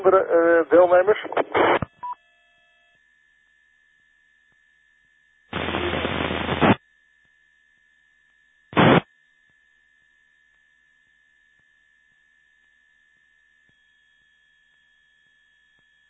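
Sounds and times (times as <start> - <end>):
radio static from someone keying a repeater: 0.0 - 1.9, 5.6 - 6.8, 8.8 - 9.0
speech: 0.1 - 1.7.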